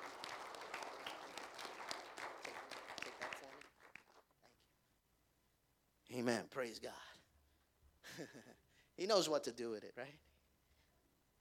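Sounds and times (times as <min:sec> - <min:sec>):
church congregation clapping hands in worship: 0:00.0 - 0:04.4
speech: 0:06.2 - 0:07.2, 0:08.2 - 0:10.3.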